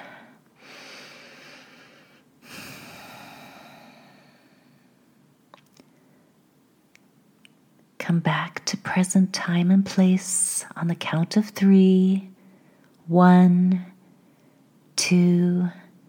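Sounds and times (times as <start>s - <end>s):
slow deep breaths in and out during a guided meditation: 0.0s - 5.0s
speech: 8.0s - 12.3s, 13.1s - 13.9s, 15.0s - 15.8s.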